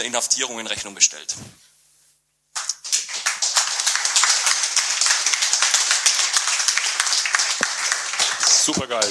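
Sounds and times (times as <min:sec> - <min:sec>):
speech: 0:00.0 - 0:01.7, 0:08.7 - 0:09.1
crowd applauding: 0:02.6 - 0:09.1.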